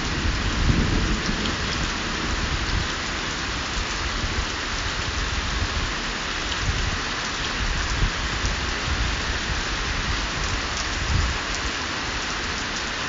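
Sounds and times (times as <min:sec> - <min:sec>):
deep rumbling thunder: 0:00.0 - 0:03.2
steady dense rain with fine scattered patter: 0:00.0 - 0:13.0.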